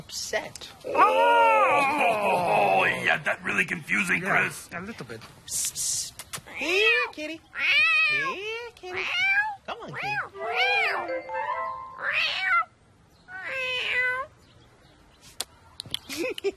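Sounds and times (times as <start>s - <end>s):
speech: 0.1s - 12.7s, 16.2s - 16.5s
cat meowing: 6.8s - 8.4s, 9.0s - 11.0s, 12.0s - 12.7s, 13.3s - 14.3s.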